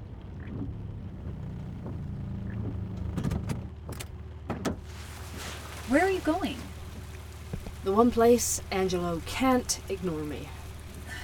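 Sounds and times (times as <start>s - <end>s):
car engine humming low and steady: 0.0s - 11.2s
car clicks and clunks as the vehicle comes to a halt: 0.2s - 4.8s
speech: 5.9s - 6.7s, 7.8s - 10.6s.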